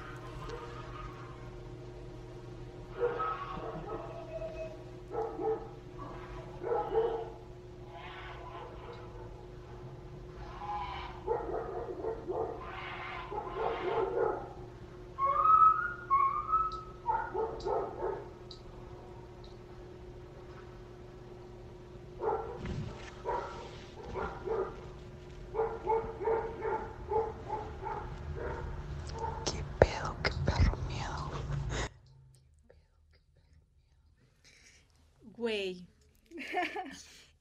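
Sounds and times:
brief high dog yelp: 0.0 - 1.5, 2.9 - 7.4, 10.6 - 14.6, 15.2 - 18.3, 25.6 - 29.5
dogs barking at night: 0.0 - 1.6, 2.8 - 9.8, 10.4 - 15.4, 16.0 - 18.6, 22.1 - 29.6
steady low hum: 0.0 - 37.3.

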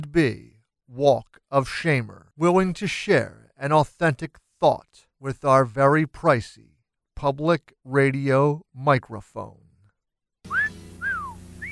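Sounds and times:
speech: 0.0 - 9.6
person whistling a soap advertising jingle: 10.5 - 11.6.

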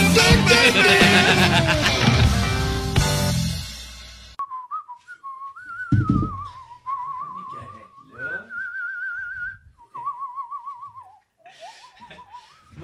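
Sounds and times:
laughter: 0.2 - 2.6, 11.4 - 12.6
person whistling a warbling tune: 4.4 - 12.7
low thump: 5.9 - 6.6.

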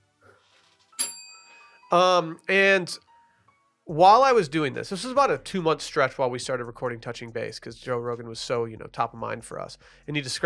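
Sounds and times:
bright bell strike ringing: 1.0 - 1.9
speech: 1.9 - 3.1, 3.9 - 10.4.

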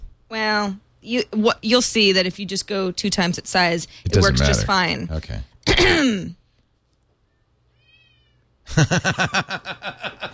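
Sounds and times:
speech: 0.4 - 6.4, 8.7 - 10.3
cat meows played through an iPhone app speaker: 7.7 - 8.4
laughter: 8.7 - 10.3.

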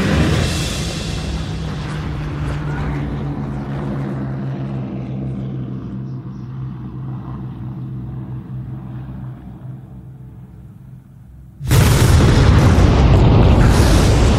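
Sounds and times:
bomber crash explosion: 0.0 - 3.2, 11.6 - 14.3
low steady aircraft drone: 0.0 - 14.3.

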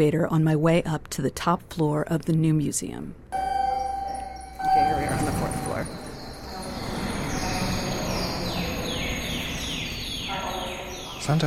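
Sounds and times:
speech: 0.0 - 3.4, 11.2 - 11.4
live birdsong of quick descending chirps in an indoor gallery: 3.8 - 11.4.

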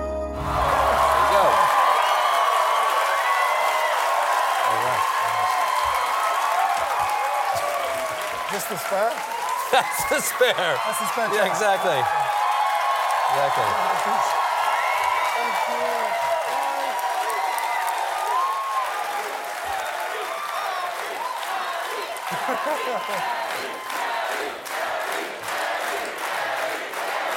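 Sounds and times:
large TV talk show studio audience applauding: 0.4 - 27.3
scattered audience whoops and shouts: 0.5 - 8.5, 9.3 - 21.4
laughter: 4.7 - 5.4, 9.6 - 12.1, 22.0 - 23.8
speech: 8.7 - 12.3, 13.3 - 14.4, 22.6 - 24.7.

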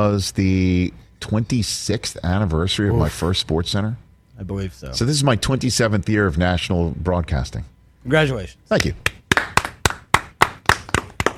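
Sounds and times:
speech: 0.0 - 9.2
few people clapping politely: 8.8 - 11.3.

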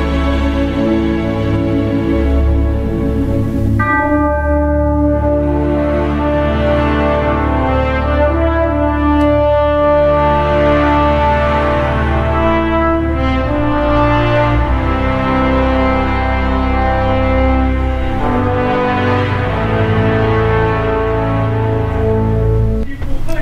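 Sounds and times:
loud orchestral film-score music with layered harmonies: 0.0 - 23.4
ringing bell-like tones: 3.8 - 6.2.

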